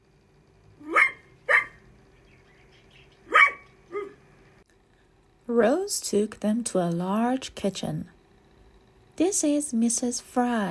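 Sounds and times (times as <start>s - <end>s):
dog barking: 0.8s - 1.8s, 3.3s - 4.2s
speech: 5.5s - 8.2s, 9.2s - 10.6s.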